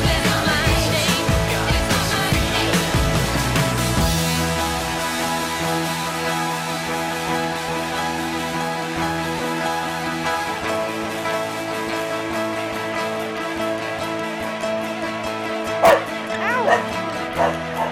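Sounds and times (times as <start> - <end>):
music playing: 0.0 - 17.8
dog barking and yipping: 15.8 - 17.8.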